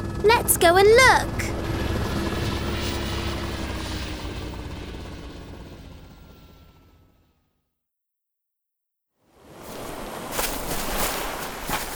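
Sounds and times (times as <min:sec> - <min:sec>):
helicopter rotor and engine noise: 0:00.0 - 0:07.2
speech: 0:00.2 - 0:01.5.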